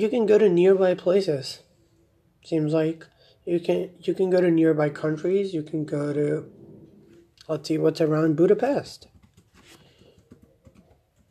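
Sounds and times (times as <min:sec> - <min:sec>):
speech: 0:00.0 - 0:01.7, 0:02.4 - 0:06.6, 0:07.5 - 0:09.1
typing on a laptop keyboard: 0:09.0 - 0:11.3.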